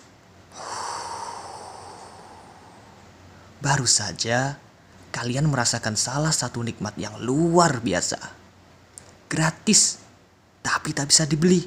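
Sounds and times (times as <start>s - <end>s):
deep breath in: 0.5s - 3.6s
speech: 3.6s - 4.6s, 5.2s - 8.4s, 9.3s - 10.0s, 10.8s - 11.6s.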